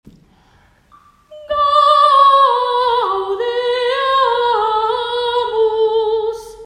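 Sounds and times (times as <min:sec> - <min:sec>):
soprano and tenor singing: 0:01.3 - 0:06.6.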